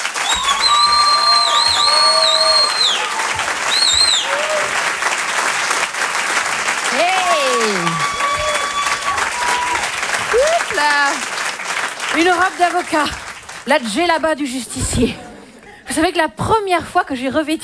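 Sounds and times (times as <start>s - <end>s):
large comedy club audience applause: 0.0s - 15.9s
audience whoops: 0.2s - 5.1s, 6.8s - 11.0s
laughter: 0.2s - 16.0s
speech: 12.2s - 15.2s, 16.0s - 17.6s.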